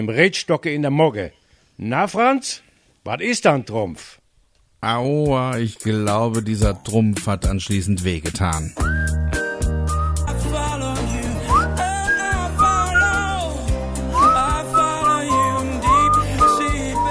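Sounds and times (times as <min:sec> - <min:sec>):
speech: 0:00.0 - 0:04.2, 0:04.8 - 0:09.1
person whistling a cheerful, bouncy tune: 0:08.8 - 0:10.4, 0:11.4 - 0:17.0
steady musical accompaniment: 0:08.8 - 0:17.0.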